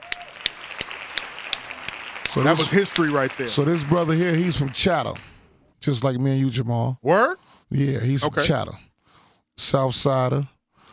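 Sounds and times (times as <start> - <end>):
sharp hand claps: 0.0 - 5.3
speech: 2.3 - 8.9, 9.6 - 10.5.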